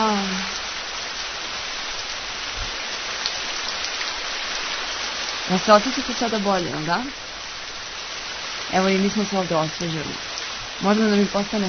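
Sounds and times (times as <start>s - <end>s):
recorded rainfall played as a sound effect: 0.0s - 11.6s
speech: 5.5s - 7.2s, 8.7s - 11.6s.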